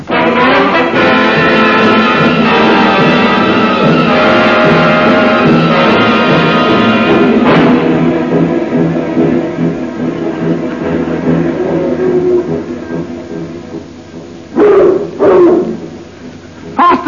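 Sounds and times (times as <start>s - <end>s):
steady rumbling noise: 0.0s - 17.0s
bloodhounds barking: 14.5s - 16.0s.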